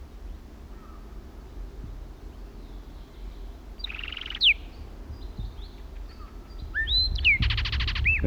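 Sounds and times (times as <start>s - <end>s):
blackbird singing from the top of a pine tree: 3.8s - 4.8s, 5.6s - 8.2s
low rumbling background: 7.0s - 8.2s.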